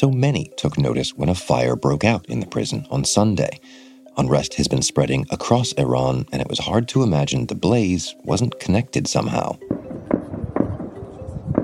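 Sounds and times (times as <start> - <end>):
speech: 0.0 - 9.9
gunshots at a prison protest: 9.7 - 11.6.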